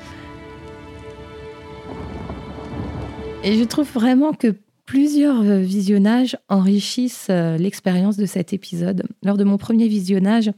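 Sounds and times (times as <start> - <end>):
steady rain pouring down: 0.0 - 4.2
low rumble of thunder: 0.2 - 4.2
speech: 3.4 - 10.5.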